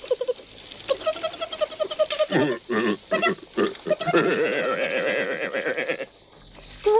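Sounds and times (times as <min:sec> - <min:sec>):
wild boar grunting and squealing while being tickled by a person: 0:00.9 - 0:06.1
speech: 0:02.3 - 0:03.4.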